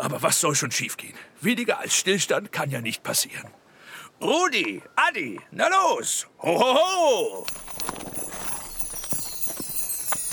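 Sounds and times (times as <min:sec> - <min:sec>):
speech: 0:00.1 - 0:03.6, 0:04.2 - 0:08.0
horse hooves of a carriage clip-clopping: 0:06.8 - 0:10.3.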